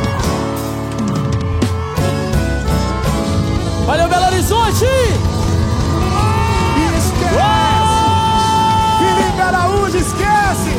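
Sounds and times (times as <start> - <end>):
large live crowd yelling and cheering in Belo Horizonte: 0.0 - 10.7
voices whooping in long drawn-out whoops: 5.8 - 10.7.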